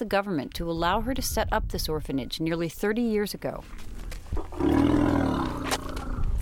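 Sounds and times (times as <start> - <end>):
speech: 0.0 - 3.9
young elephant low groaning call in a dusty clearing: 4.5 - 6.3.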